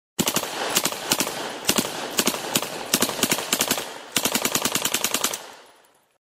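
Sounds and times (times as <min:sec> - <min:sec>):
machine gun firing: 0:00.2 - 0:05.8.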